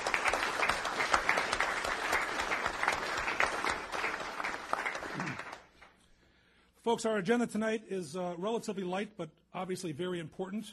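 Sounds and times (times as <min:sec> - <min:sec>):
audience applause at a city council meeting: 0:00.0 - 0:05.9
speech: 0:06.9 - 0:10.7.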